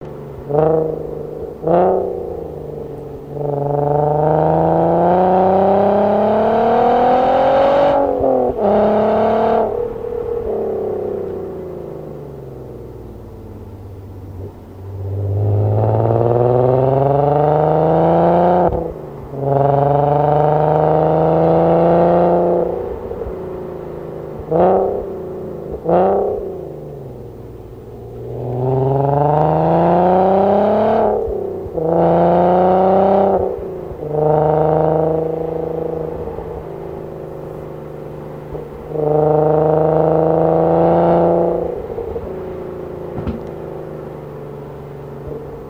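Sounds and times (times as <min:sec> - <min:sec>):
R32 car engine driving on a twisty road: 0:00.0 - 0:45.6.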